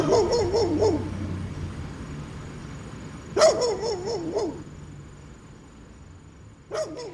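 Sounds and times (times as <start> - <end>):
dog in Southwest Virginia barking and yelping: 0.0 - 1.2, 3.4 - 4.7, 6.7 - 7.1.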